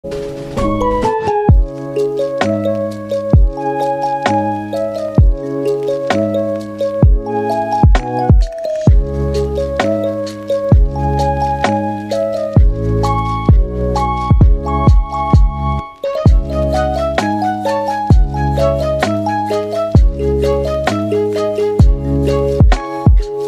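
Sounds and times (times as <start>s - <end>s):
lofi music: 0.0s - 23.4s.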